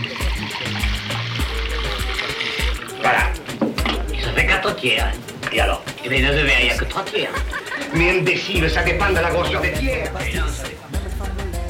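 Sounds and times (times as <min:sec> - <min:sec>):
water poured into a mixed drink of curaçao and lemon: 0:00.0 - 0:04.8
speech: 0:04.8 - 0:10.7
laughter: 0:06.2 - 0:10.6.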